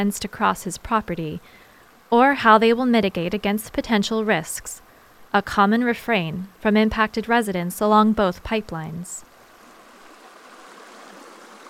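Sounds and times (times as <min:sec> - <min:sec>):
spring-fed small creek water running: 0:00.0 - 0:05.3, 0:07.7 - 0:11.6
speech: 0:00.0 - 0:09.3.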